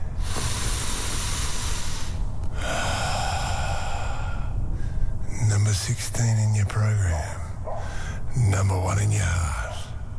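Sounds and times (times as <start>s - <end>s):
deep breathing during meditation: 0.0s - 5.3s, 7.6s - 8.3s
speech: 5.8s - 7.4s, 8.4s - 9.6s.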